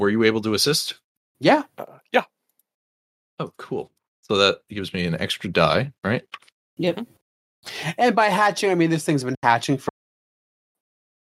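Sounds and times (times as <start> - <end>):
speech: 0.0 - 2.4, 3.4 - 9.9
garbled clipped voice call audio: 3.4 - 6.3.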